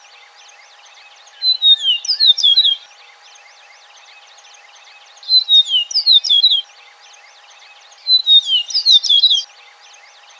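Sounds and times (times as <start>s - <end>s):
Eastern meadowlark singing: 1.3s - 2.8s, 5.3s - 6.6s, 8.1s - 9.5s.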